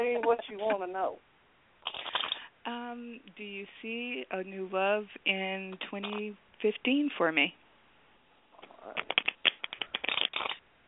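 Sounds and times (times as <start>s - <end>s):
speech: 0.1s - 2.0s, 2.6s - 7.6s, 8.8s - 9.2s
deck of cards riffle shuffling: 1.8s - 2.4s, 9.0s - 10.6s.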